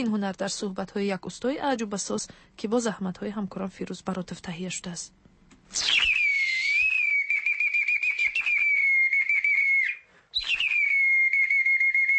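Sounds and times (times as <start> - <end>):
speech: 0.0 - 6.1
clay toy whistle imitating a nightingale's song: 5.8 - 12.1.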